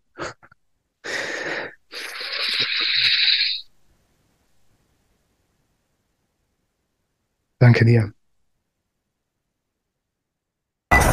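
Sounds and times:
deliberate deep breath by one person: 1.0 - 3.2
speech: 7.6 - 8.2.

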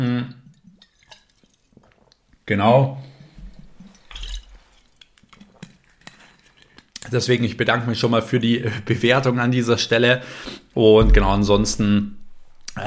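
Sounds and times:
low swallow: 0.5 - 2.3
person sipping water from a glass: 0.5 - 2.3, 3.6 - 7.0
speech: 2.5 - 3.1, 7.1 - 12.2.

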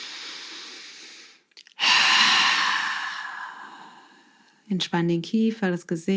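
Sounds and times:
loud sigh-like exhale: 0.0 - 4.5
deep breathing during a guided relaxation exercise: 0.0 - 4.6
speech: 4.7 - 6.1.

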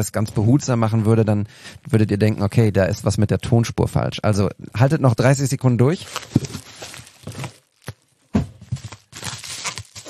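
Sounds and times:
speech: 0.0 - 6.6
poppable packaging paper from a parcel crinkling as it is handled: 5.9 - 10.0.

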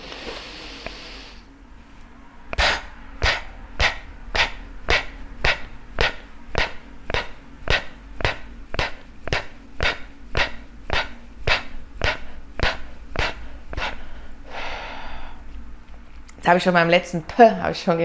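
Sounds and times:
sharp forceful exhales during a breathing exercise: 2.6 - 15.4
soft breath and longer drawn breath during a breathing exercise: 2.6 - 15.5
speech: 16.5 - 18.0.

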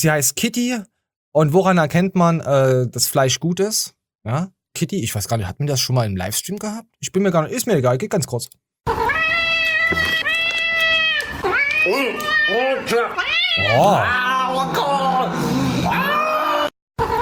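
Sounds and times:
speech: 0.0 - 9.0, 9.9 - 10.2, 11.9 - 16.0
cat meowing loudly and insistently: 8.9 - 14.4.

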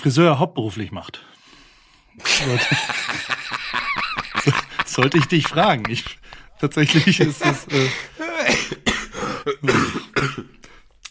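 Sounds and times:
speech: 0.0 - 1.4, 2.2 - 10.6
breathy laughter: 2.2 - 9.7
person coughing after hard laughing: 7.4 - 10.6
throat clearing: 8.3 - 10.6.

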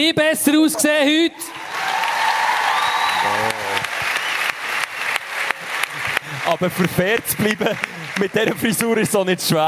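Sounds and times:
speech: 0.0 - 1.9, 3.2 - 4.0, 6.5 - 9.6
crowd applauding: 1.5 - 9.6.

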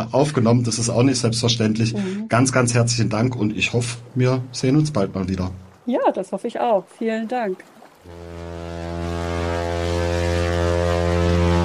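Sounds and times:
speech: 0.1 - 8.6
ship horn blast on a boat during a short excursion: 8.1 - 11.6.

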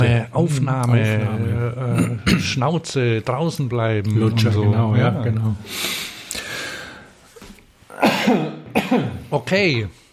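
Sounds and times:
speech: 0.0 - 6.1, 8.0 - 10.0
harsh coughs in an office recording studio in Cologne: 2.0 - 2.6, 7.9 - 9.3.

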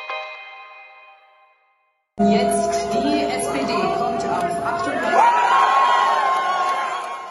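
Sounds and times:
speech: 2.2 - 3.1
crowd of party supporters cheering at an election party: 3.1 - 7.2
high whoop over a cheering crowd: 4.9 - 7.2.

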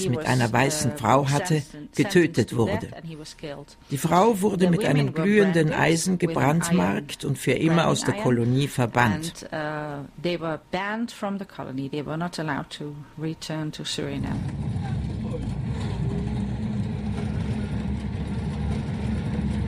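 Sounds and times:
speech: 0.0 - 15.1
old bus engine rumbling on rough jungle track: 14.2 - 19.6
vehicle rattling on rough jungle track: 14.2 - 19.6.

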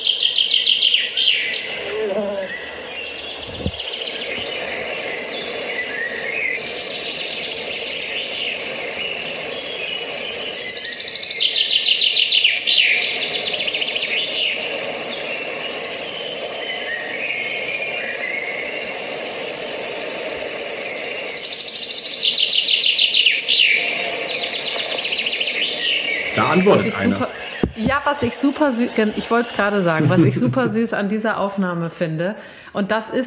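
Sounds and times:
male chaffinch singing trilled phrases: 0.0 - 19.0, 20.8 - 31.4
faint birdsong: 0.0 - 19.1, 20.6 - 27.7
laughter: 26.4 - 27.3, 29.8 - 30.9
speech: 26.5 - 33.2.

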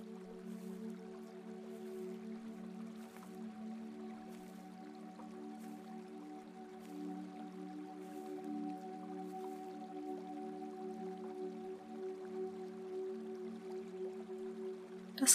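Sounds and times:
faint water drips and trickles: 0.0 - 15.3
small river flowing through a forest clearing: 0.0 - 15.3.

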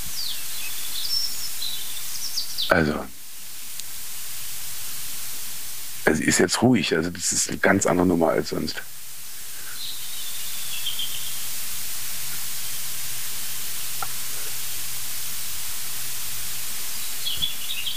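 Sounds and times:
European robin singing: 0.0 - 3.0, 9.6 - 11.5, 16.8 - 17.9
steady broadband hiss: 0.0 - 17.9
speech: 2.7 - 3.2, 6.1 - 9.0.

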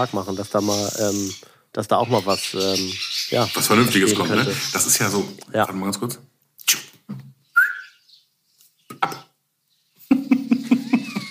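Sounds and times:
perched swallow chirping loudly: 0.0 - 5.6, 6.6 - 9.0
speech: 0.0 - 6.3
laughter: 10.0 - 11.2.

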